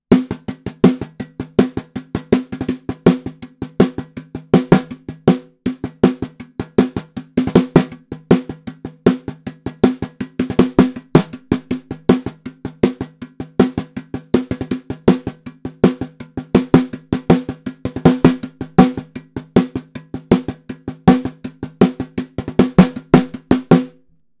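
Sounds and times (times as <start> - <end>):
snare drum percussion intro: 0.1 - 24.2.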